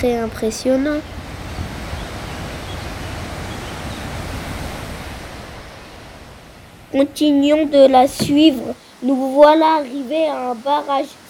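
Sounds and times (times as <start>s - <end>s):
speech: 0.0s - 1.2s, 6.9s - 11.2s
turbulent river water rushing over rock: 2.0s - 11.2s.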